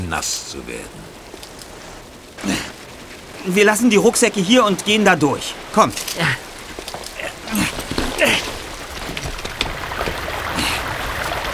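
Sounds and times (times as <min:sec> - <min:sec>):
rushing water of a waterfall: 0:00.0 - 0:11.5
speech: 0:00.1 - 0:01.2, 0:03.4 - 0:06.5
splashes and knocks: 0:05.8 - 0:11.5.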